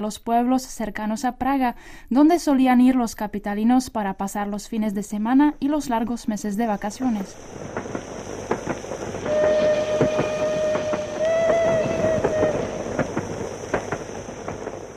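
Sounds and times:
speech: 0.0s - 8.0s
train wheels clattering on tracks: 7.5s - 14.9s
train horn blast: 9.2s - 13.1s.

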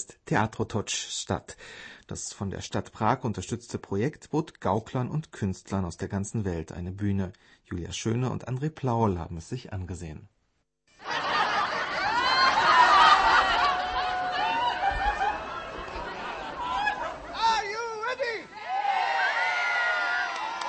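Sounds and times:
speech: 0.0s - 10.3s
outdoor street theatre crowd laughing and cheering on a square in Prague: 11.0s - 20.6s
higher exclamations from the crowd: 12.2s - 20.6s.

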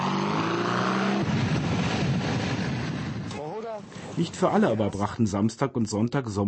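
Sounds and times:
motorcycles roaring past: 0.0s - 3.3s
speech: 4.2s - 6.4s.

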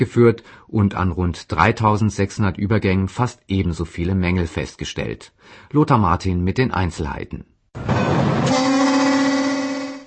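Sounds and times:
speech: 0.0s - 7.5s
train warning horn blaring: 8.4s - 10.0s.

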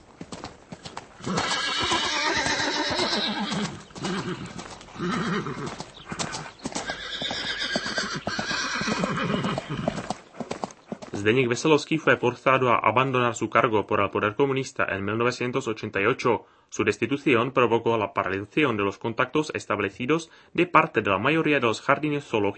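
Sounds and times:
speech: 1.2s - 1.6s, 4.3s - 5.9s, 11.2s - 22.5s
Przewalski's horse neighing: 1.2s - 10.2s.

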